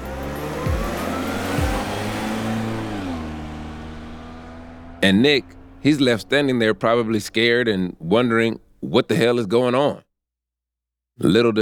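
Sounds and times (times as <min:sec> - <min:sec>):
car engine revving and pulling away through gears: 0:00.0 - 0:08.8
speech: 0:05.0 - 0:10.0, 0:11.2 - 0:11.6.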